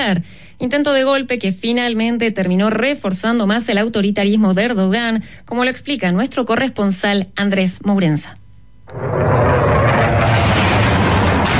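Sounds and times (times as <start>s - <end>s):
speech: 0.0s - 9.5s
roar of an F-16 fighter jet dropping a bomb on the presidential palace in Ankara: 8.9s - 11.5s.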